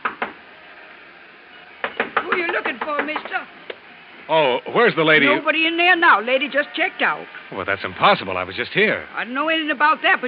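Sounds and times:
knocking on a hotel room door: 0:00.0 - 0:00.4, 0:01.8 - 0:03.4
speech: 0:02.4 - 0:03.7, 0:04.3 - 0:10.2.

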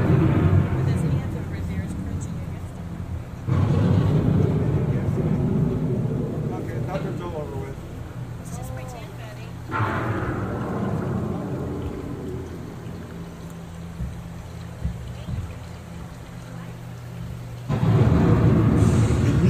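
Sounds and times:
deep rolling thunder from an approaching storm: 0:00.0 - 0:09.0, 0:09.6 - 0:13.9, 0:17.7 - 0:19.4
steady hiss of rain: 0:00.0 - 0:19.4.

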